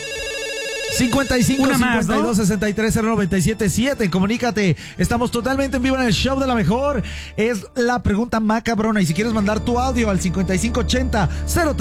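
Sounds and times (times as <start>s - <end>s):
telephone ringtone for an incoming call: 0.0s - 2.5s
speech: 0.9s - 11.7s.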